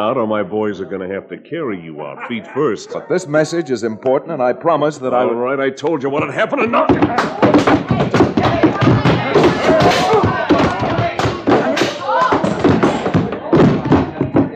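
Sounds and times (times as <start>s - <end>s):
speech: 0.0s - 8.2s
people grunting: 2.2s - 3.3s, 6.6s - 14.2s
scuffling: 6.7s - 14.5s
fists thudding and smacking in a fistfight: 6.8s - 14.5s.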